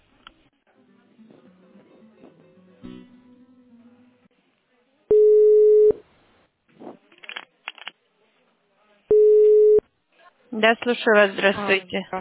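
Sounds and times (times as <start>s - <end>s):
telephone line tones during call transfer: 5.1s - 6.0s, 9.1s - 9.8s
speech: 10.6s - 12.1s.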